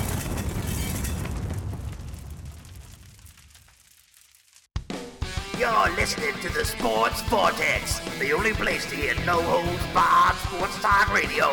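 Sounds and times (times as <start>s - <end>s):
hand grenade explosion: 0.0s - 4.4s
speech: 5.6s - 11.5s.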